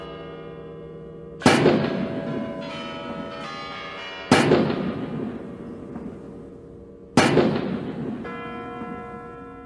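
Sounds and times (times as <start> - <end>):
Kremlin tower bells ringing the hour: 0.0 - 9.6
heavy cannon shots of a 21-gun salute booming with rolling echo: 1.4 - 3.4, 4.3 - 6.5, 7.2 - 9.0.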